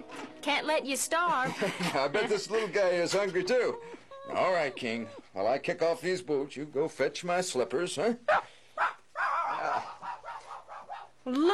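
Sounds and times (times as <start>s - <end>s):
speech: 0.4s - 8.6s, 11.2s - 11.5s
small dog barking with high yips: 8.3s - 11.2s.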